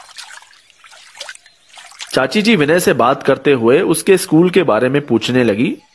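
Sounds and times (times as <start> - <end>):
water from a lota trickling and splashing while washing face: 0.0 - 3.0
speech: 2.1 - 5.9.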